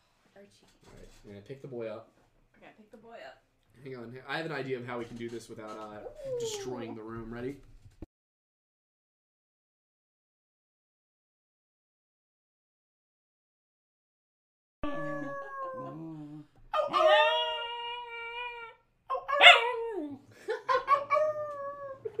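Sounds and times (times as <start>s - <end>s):
speech: 0.4s - 7.7s
dog howling and whimpering: 6.0s - 6.9s, 14.8s - 20.2s, 20.9s - 22.1s.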